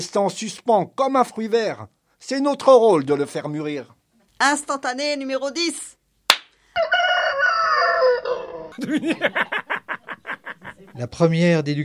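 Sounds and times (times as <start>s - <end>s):
speech: 0.0s - 6.0s, 6.8s - 7.0s, 8.7s - 9.7s, 10.9s - 11.8s
rooster crowing: 6.8s - 8.8s
laughter: 8.5s - 11.0s.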